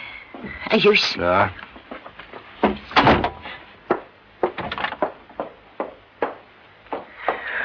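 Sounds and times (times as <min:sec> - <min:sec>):
speech: 0:00.7 - 0:01.6
wooden door knocking and rattling while being handled: 0:02.6 - 0:06.0.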